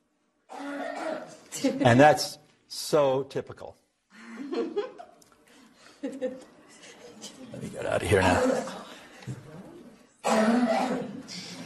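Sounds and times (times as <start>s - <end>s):
harsh honking habit cough with a brassy goose-like tone: 0.5s - 1.4s, 8.2s - 8.9s, 10.2s - 11.3s
speech: 1.6s - 3.8s, 6.0s - 6.5s, 7.5s - 9.4s.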